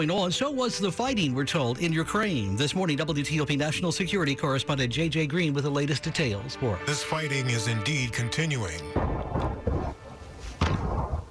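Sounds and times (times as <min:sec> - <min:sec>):
speech: 0:00.0 - 0:09.4
booming impacts from incendiary ammunition: 0:08.9 - 0:10.0, 0:10.6 - 0:11.2
crackling bursts from incendiary ammunition: 0:08.9 - 0:11.2.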